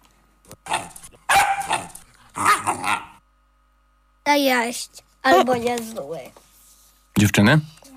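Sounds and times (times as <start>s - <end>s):
dog barking and growling: 0.6s - 3.2s
speech: 4.4s - 6.5s, 7.2s - 7.7s.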